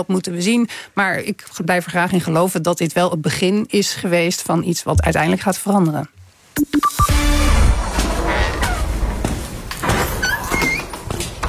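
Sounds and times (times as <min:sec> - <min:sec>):
speech: 0:00.0 - 0:06.7
heavy door creaking open: 0:07.1 - 0:11.4.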